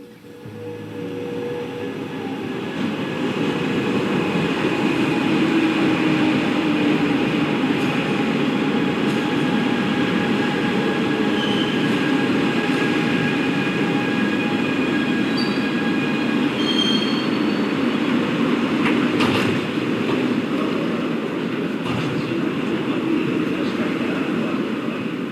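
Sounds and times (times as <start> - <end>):
metro train rumbling into a station: 0.0 - 25.3
metro train wheel squeals: 11.3 - 11.8, 16.6 - 17.7.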